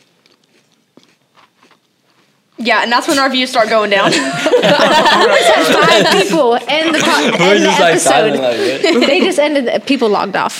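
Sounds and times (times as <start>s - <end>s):
crunchy peanut butter cookie being chewed: 0.0s - 2.6s
speech: 2.6s - 10.5s
laughter: 3.9s - 9.6s.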